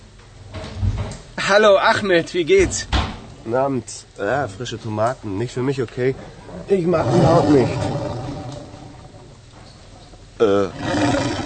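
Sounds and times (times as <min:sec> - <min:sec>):
speech: 0:01.5 - 0:08.1, 0:10.4 - 0:11.2
stomach growling from hunger: 0:06.2 - 0:11.4.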